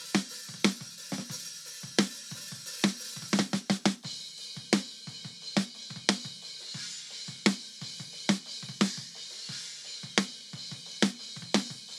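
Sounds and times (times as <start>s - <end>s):
cymbals: 0.0s - 11.9s
very loud snare drum: 0.0s - 11.9s.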